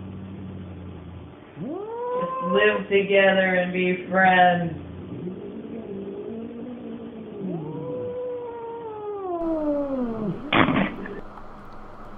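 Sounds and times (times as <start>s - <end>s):
cats caterwauling at each other inside a house: 1.5s - 2.8s, 4.8s - 11.2s
speech: 2.4s - 4.9s.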